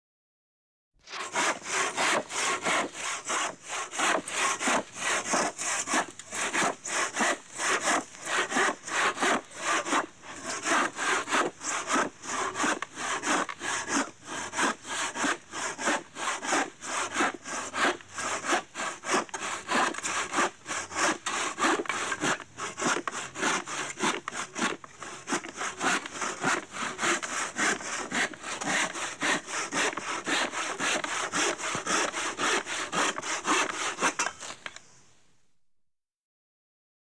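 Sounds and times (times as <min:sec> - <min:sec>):
saw: 0:01.0 - 0:34.8.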